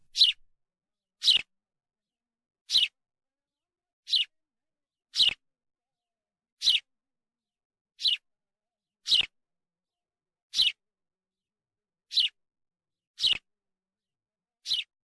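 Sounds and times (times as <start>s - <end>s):
house sparrow chirping: 0.0s - 0.4s, 1.2s - 1.5s, 2.7s - 3.0s, 4.0s - 4.4s, 5.1s - 5.4s, 6.6s - 6.9s, 8.0s - 8.2s, 9.0s - 9.3s, 10.5s - 10.8s, 12.1s - 12.4s, 13.2s - 13.4s, 14.6s - 14.9s.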